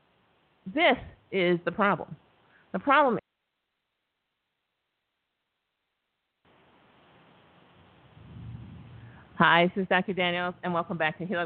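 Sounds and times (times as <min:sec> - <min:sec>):
static-like hiss from connection drop: 0:00.0 - 0:11.4
speech: 0:00.7 - 0:03.2, 0:09.4 - 0:11.4
low rumble: 0:08.1 - 0:09.4.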